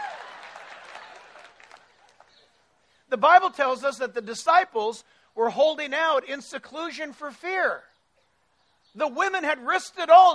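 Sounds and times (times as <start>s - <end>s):
audience clapping: 0.0s - 2.6s
speech: 3.1s - 7.9s, 9.0s - 10.3s.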